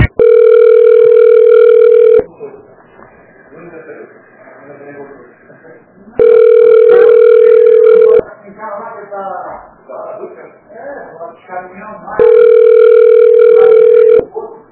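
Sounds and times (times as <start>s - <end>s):
phone ringback tone of an unanswered call: 0.2s - 2.3s, 6.2s - 8.2s, 12.2s - 14.3s
faint voices: 1.9s - 14.6s.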